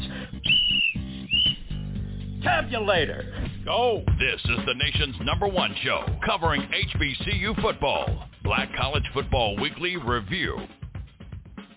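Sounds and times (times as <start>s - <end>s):
shrill blown whistle blasts: 0.4s - 1.9s
speech: 2.5s - 10.8s.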